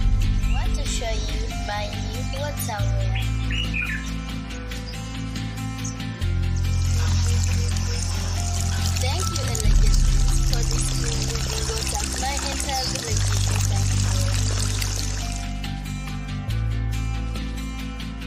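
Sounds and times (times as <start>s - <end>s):
soft music: 0.0s - 18.2s
clean water pouring: 6.7s - 15.7s.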